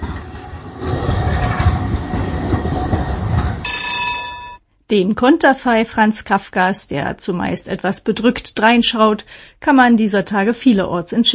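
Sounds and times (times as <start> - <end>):
tram rumbling along its rails through central Prague Czech Republic: 0.0 - 4.6
speech: 4.9 - 11.3.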